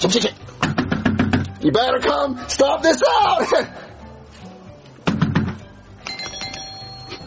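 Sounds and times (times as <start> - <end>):
speech: 0.0 - 0.5, 1.6 - 3.9
knocks on a door: 0.6 - 1.4
electronic doorbell chime: 6.0 - 7.2.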